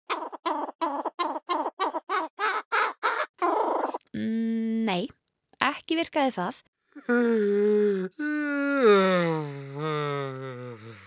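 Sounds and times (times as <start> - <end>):
laughing kookaburra call with rhythmic cackling bursts: 0.1 - 4.0
speech: 4.9 - 5.2, 5.8 - 10.4.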